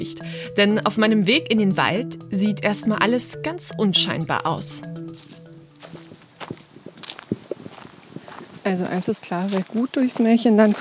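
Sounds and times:
speech: 0:00.0 - 0:05.3, 0:08.7 - 0:10.7
footsteps in a forest over sticks, stones, sand and mud on wet ground: 0:05.1 - 0:10.7.

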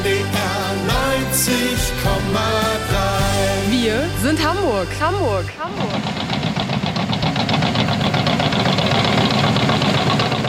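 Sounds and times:
deep knocking diesel engine drone with rhythmic pulsing: 0:00.0 - 0:10.4
sand trucks working on a huge open area: 0:00.0 - 0:10.4
heavy crawler vehicles working on a huge open area: 0:04.1 - 0:10.4
speech: 0:04.3 - 0:06.3.

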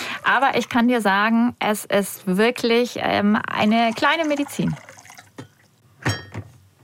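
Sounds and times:
speech: 0:00.2 - 0:04.9
warm water being poured into cups for drinking: 0:03.6 - 0:05.7.

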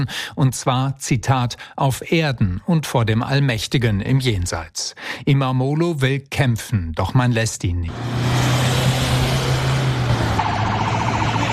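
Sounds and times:
speech: 0:00.0 - 0:08.8
convoy of cars driving past to the high-security prison in Silivri, Turkey: 0:07.9 - 0:11.5
wavering siren: 0:09.0 - 0:11.5.

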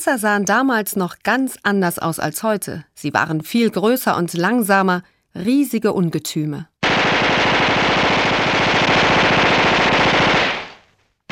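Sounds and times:
speech: 0:00.0 - 0:06.7
World War I machine gun firing: 0:06.8 - 0:11.3.

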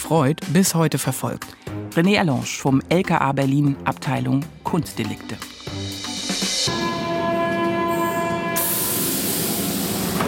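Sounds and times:
speech: 0:00.0 - 0:05.8
underground train electric whining tones: 0:05.4 - 0:09.8
Berlin U-Bahn underground train rumbling near Platz der Luftbrücke station: 0:05.5 - 0:10.2.

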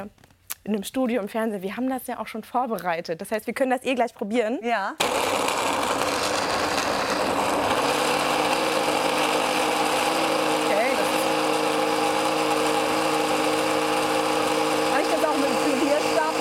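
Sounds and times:
speech: 0:00.0 - 0:06.4
electric blender mixing cold soup in a TV studio: 0:05.0 - 0:16.3.

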